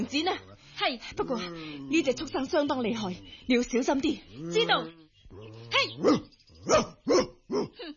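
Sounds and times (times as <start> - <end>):
dog growling low: 0.0 - 7.8
speech: 0.0 - 7.9
dog barking: 6.0 - 7.8.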